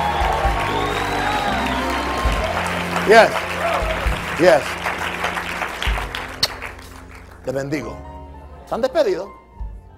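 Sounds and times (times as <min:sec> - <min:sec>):
large audience shouting praise and cheering: 0:00.0 - 0:06.5
crowd clapping: 0:00.0 - 0:07.5
speech: 0:03.1 - 0:03.4, 0:04.4 - 0:04.8, 0:07.4 - 0:08.1, 0:08.7 - 0:09.4.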